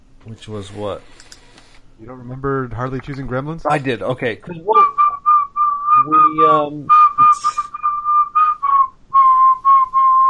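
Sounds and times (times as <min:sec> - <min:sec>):
speech: 0:00.2 - 0:01.3, 0:02.0 - 0:04.9, 0:06.0 - 0:07.5
whistled film theme played from a vinyl record: 0:04.8 - 0:10.2
low voice-like sound: 0:05.9 - 0:07.8.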